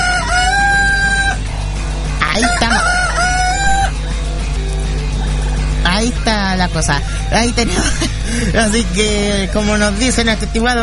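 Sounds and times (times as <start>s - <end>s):
chickens squawking in a video game: 0.0s - 1.6s, 2.2s - 4.2s
chickens crowing and clucking in a video game: 0.0s - 5.8s
hum: 0.0s - 10.8s
laughter: 2.2s - 3.2s, 3.8s - 10.0s
speech: 6.7s - 10.8s.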